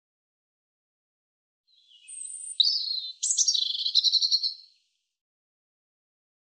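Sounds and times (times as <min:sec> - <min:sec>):
European robin singing: 0:01.7 - 0:04.9.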